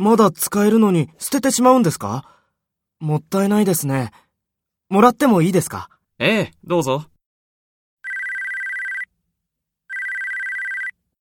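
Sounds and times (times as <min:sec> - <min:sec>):
speech: 0:00.0 - 0:02.4, 0:03.0 - 0:04.2, 0:04.9 - 0:07.1
mobile phone ringtone with a bright electronic tone: 0:08.0 - 0:09.1, 0:09.9 - 0:11.0.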